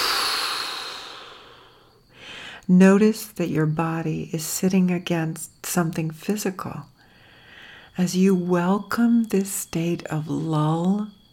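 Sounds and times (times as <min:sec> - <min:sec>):
big inhale then exhale through the mouth: 0:00.0 - 0:02.7, 0:07.0 - 0:08.0
speech: 0:02.7 - 0:06.9, 0:08.0 - 0:11.2.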